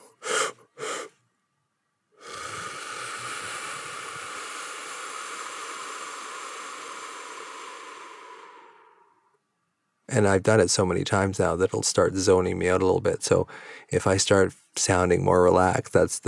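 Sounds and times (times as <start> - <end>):
short sharp inhales of three-part breathing: 0.0 - 1.2, 2.2 - 9.4, 13.5 - 13.9
long steady hissing exhale through pursed lips: 2.2 - 9.4
speech: 10.1 - 16.2.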